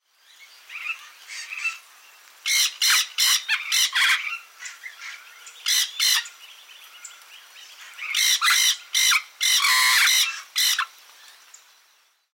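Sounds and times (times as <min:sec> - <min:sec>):
rainforest ambience in the Venezuelan Amazon in Ecuador: 0:00.0 - 0:12.3.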